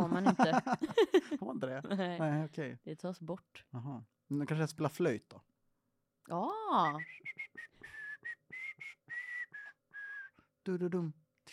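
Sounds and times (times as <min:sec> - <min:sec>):
laughter: 0:00.0 - 0:01.6
speech: 0:00.2 - 0:05.5, 0:06.3 - 0:07.7, 0:10.6 - 0:11.5
person trying to whistle with breathy puffs of air: 0:06.8 - 0:10.4.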